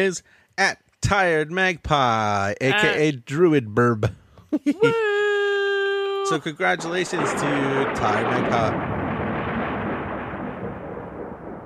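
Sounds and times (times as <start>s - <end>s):
speech: 0.0s - 5.2s, 6.3s - 9.0s
thunder rumbling: 6.6s - 11.6s.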